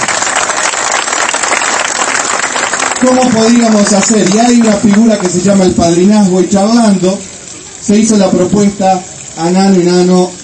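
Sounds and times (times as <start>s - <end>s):
audience applause at a talk about a fountain: 0.0s - 5.5s
speech: 3.0s - 7.3s, 7.9s - 10.4s.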